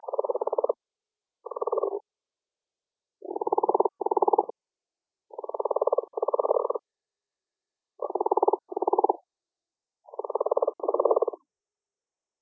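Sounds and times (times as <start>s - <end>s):
Brown's leopard frog Lithobates brownorum croaking: 0.0s - 0.8s, 1.4s - 2.0s, 3.2s - 4.5s, 5.3s - 6.8s, 8.0s - 9.2s, 10.1s - 11.4s.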